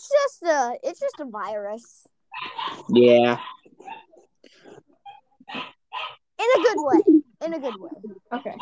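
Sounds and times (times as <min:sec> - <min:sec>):
speech: 0:00.2 - 0:04.9, 0:05.5 - 0:08.6
dog whining and yelping in high-pitched bursts: 0:02.3 - 0:04.3, 0:05.0 - 0:08.6
human voice: 0:02.9 - 0:03.4.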